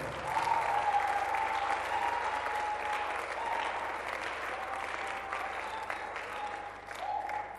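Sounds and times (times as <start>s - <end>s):
large crowd applause: 0.0s - 7.5s.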